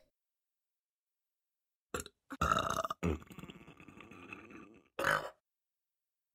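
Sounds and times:
loud burps: 1.9 - 5.4
speech: 3.1 - 3.4.

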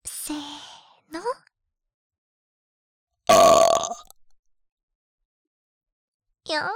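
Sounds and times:
faint gurgles: 3.3 - 4.1
loud deliberate burp with throaty tone: 3.3 - 4.1
speech: 6.5 - 6.7.

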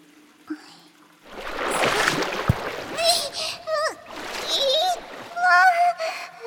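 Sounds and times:
water splashing while someone's back is washed in a bath's washing area: 1.2 - 6.1
high-pitched voice talking: 3.0 - 3.9.

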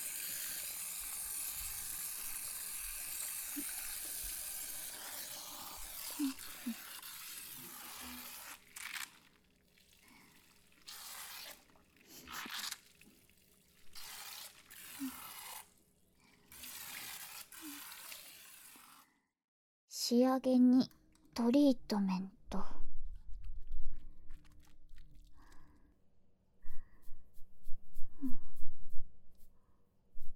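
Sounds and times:
shower water spraying over hair during a rinse: 0.0 - 15.8, 16.4 - 19.0
speech: 20.1 - 22.8.

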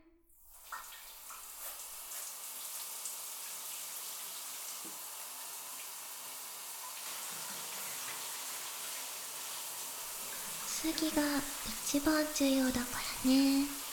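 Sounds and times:
water rinsing hair during a shampoo: 0.4 - 13.9
speech: 10.8 - 13.8.

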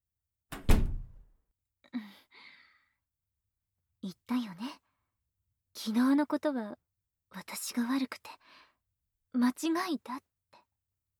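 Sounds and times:
door swinging shut with a solid thump: 0.5 - 1.2
door latch clicking and rattling as it settles: 0.6 - 1.2
speech: 4.0 - 4.8, 5.8 - 8.6, 9.3 - 10.3.

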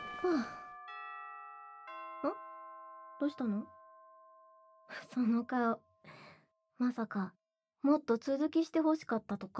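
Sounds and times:
person sighing: 0.0 - 0.6
electronic school chime ringing in two bell-like tones: 0.0 - 1.2
speech: 0.2 - 0.6, 2.2 - 2.4, 3.2 - 3.8, 4.9 - 6.2, 6.8 - 9.5.

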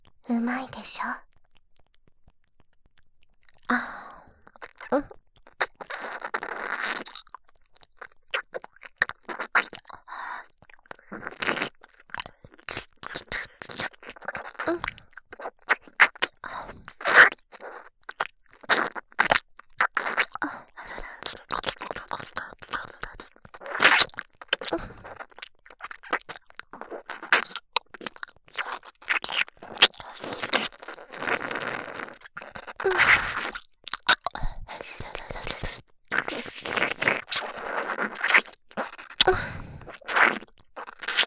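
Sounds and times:
wet ear-licking mouth sounds: 0.0 - 41.2
speech: 0.3 - 1.3, 3.7 - 4.0, 4.9 - 5.2.

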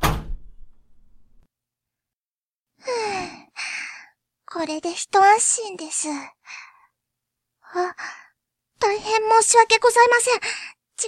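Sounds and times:
door swinging shut with a solid thud and low rumble: 0.0 - 1.4
speech: 4.6 - 6.7, 7.7 - 8.2, 8.8 - 11.0.

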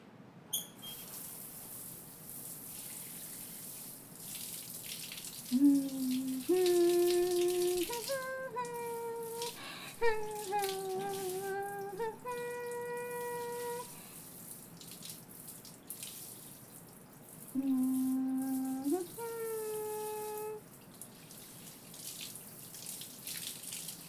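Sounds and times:
running water rinsing shampoo from hair in a bath: 0.8 - 24.0
person humming a short melody: 5.5 - 14.0, 17.6 - 20.6.

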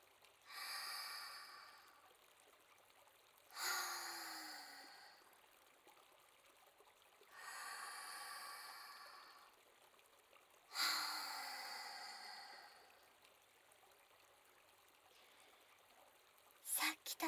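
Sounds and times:
deep breaths taken before soaking in an herb-scented spring: 0.5 - 2.1, 3.5 - 5.4, 7.3 - 9.6, 10.7 - 13.2.

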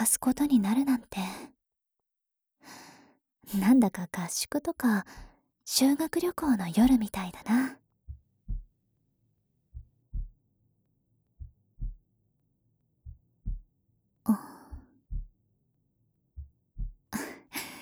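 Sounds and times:
speech: 0.0 - 1.5, 3.5 - 7.8, 14.3 - 14.5
heartbeat in lub-dub pairs: 6.8 - 7.4, 8.1 - 8.7, 9.8 - 10.4, 11.4 - 12.0, 13.1 - 13.7, 14.3 - 15.4, 16.4 - 17.2.

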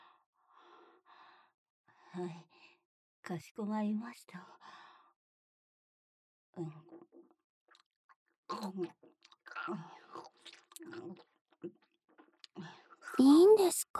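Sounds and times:
speech: 2.2 - 4.7, 6.6 - 7.1, 8.5 - 10.0, 12.6 - 13.9
wet chewing: 9.2 - 11.2.

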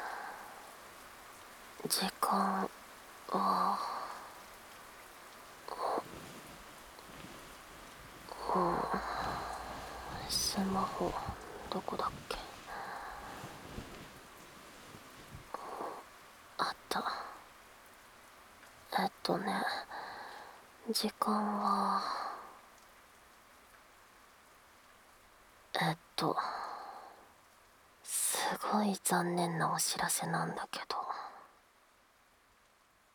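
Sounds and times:
rain falling outside: 0.0 - 33.1
speech: 1.8 - 3.9, 10.6 - 12.4, 19.3 - 19.9, 20.9 - 22.2, 28.8 - 31.0
light rustling: 5.7 - 15.6
person murmuring quietly: 8.3 - 13.5.

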